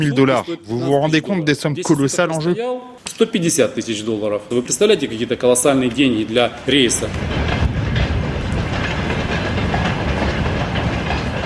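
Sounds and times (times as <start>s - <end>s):
speech: 0.0s - 7.6s
freight train leaving a port rolling along rails: 3.7s - 11.4s
faint rhythmic clatter of freight train wheels: 3.8s - 11.4s.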